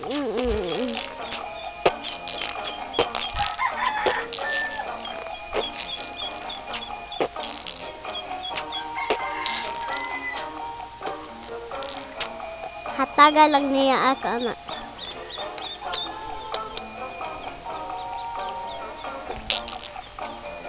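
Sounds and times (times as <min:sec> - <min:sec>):
chickens clucking: 0:00.0 - 0:20.5
rooster crowing: 0:03.4 - 0:05.0, 0:08.8 - 0:10.6
speech: 0:13.2 - 0:14.6.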